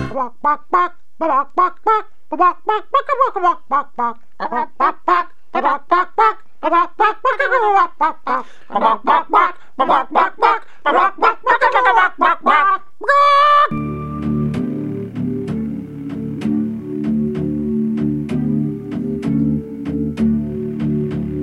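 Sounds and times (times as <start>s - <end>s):
chicken clucking and squawking: 0.2s - 13.7s
low rumbling noise: 13.7s - 21.4s.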